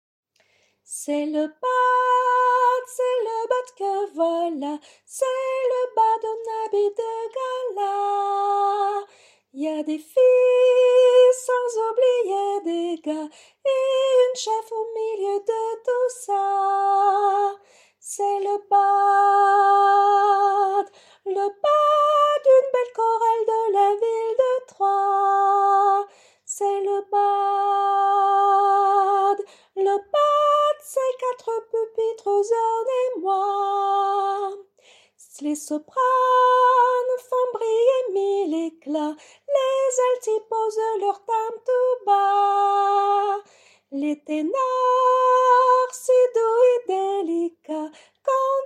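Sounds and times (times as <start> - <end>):
soprano singing: 0.9 - 48.6.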